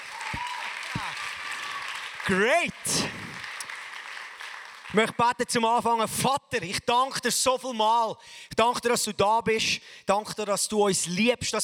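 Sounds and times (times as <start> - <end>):
audience applause: 0.0 - 5.2
speech: 2.3 - 3.1, 4.9 - 11.6.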